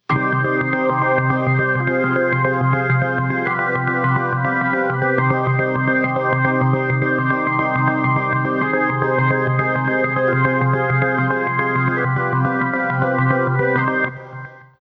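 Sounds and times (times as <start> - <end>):
chopped organ: 0.1 - 14.6.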